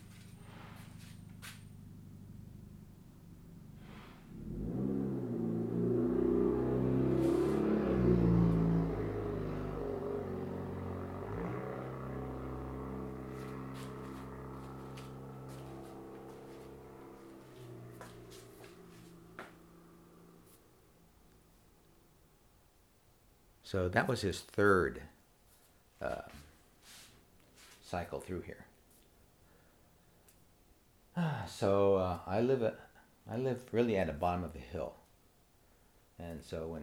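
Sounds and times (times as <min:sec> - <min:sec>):
heavy truck rumbling past on a road: 0:00.0 - 0:21.4
speech: 0:23.7 - 0:25.1, 0:27.9 - 0:28.7, 0:31.6 - 0:35.0, 0:36.2 - 0:36.8.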